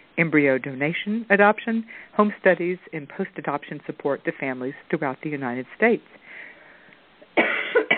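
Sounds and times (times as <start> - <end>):
speech: 0.2 - 6.5
radio host coughing: 7.4 - 7.9.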